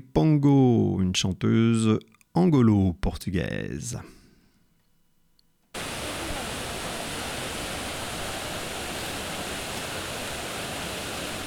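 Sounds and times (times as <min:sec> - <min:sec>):
speech: 0:00.2 - 0:04.2
water splashing from a famous fountain in Rome: 0:05.8 - 0:11.4.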